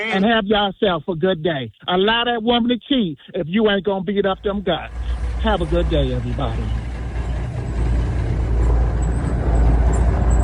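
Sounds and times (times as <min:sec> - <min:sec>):
speech: 0:00.0 - 0:06.9
heavy semi-truck engine roaring: 0:04.0 - 0:10.4.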